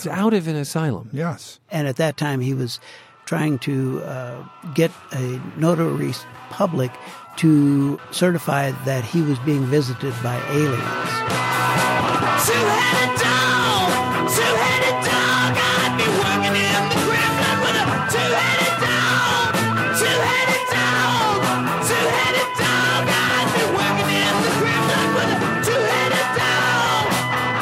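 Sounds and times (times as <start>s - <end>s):
speech: 0.0s - 11.8s, 12.4s - 13.4s
record playing band song with screamed lead vocal: 10.4s - 27.6s.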